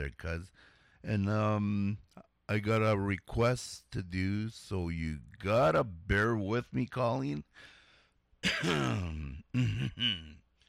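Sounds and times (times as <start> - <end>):
speech: 0.0 - 7.8, 8.4 - 10.4
man clearing his throat: 8.4 - 10.4.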